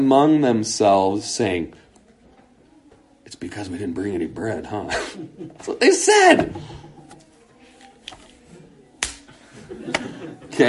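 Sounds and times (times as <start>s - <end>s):
speech: 0.0s - 1.8s, 3.3s - 6.9s, 9.7s - 10.6s
laughter: 4.8s - 5.8s, 9.3s - 10.6s
hand slapping face: 9.0s - 9.3s, 9.9s - 10.1s.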